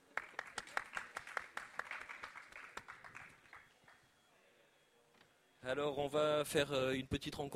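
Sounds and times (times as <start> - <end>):
group of people applauding: 0.0 - 4.0
speech: 5.6 - 7.5.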